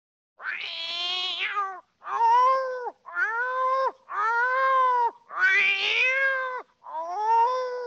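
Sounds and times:
cat wailing meows: 0.4 - 7.8.

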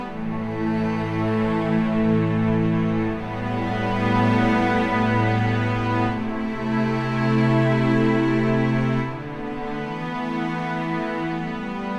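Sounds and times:
cello ensemble playing film music: 0.0 - 11.9.

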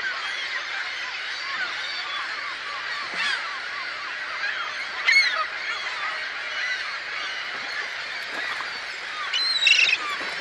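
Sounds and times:
gulls calling in a dense chorus: 0.0 - 10.3.

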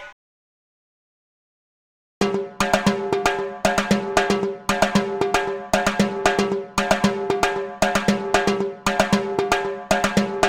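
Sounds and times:
timbale percussion loop: 2.2 - 10.4.

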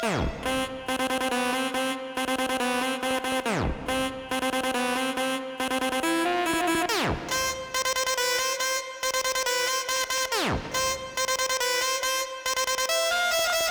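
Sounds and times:
saxophone trap music: 0.0 - 13.6.

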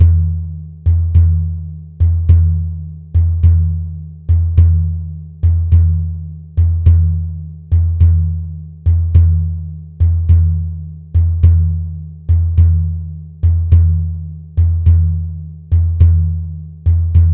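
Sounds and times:
medieval hand drum rhythm: 0.0 - 17.3.

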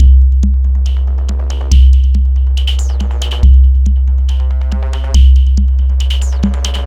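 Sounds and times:
dubstep bass sound effect: 0.0 - 6.8.

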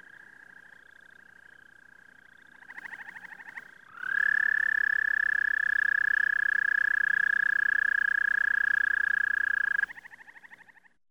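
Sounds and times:
frog trill: 4.0 - 10.5.

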